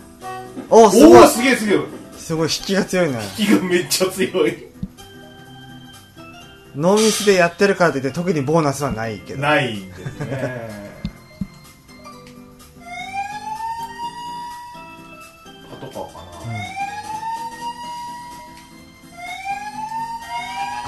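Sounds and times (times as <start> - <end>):
speech: 0.6 - 4.7, 6.8 - 10.8
laughter: 9.9 - 11.2, 15.6 - 16.8
North American police car siren wailing: 12.8 - 15.1, 16.4 - 20.8.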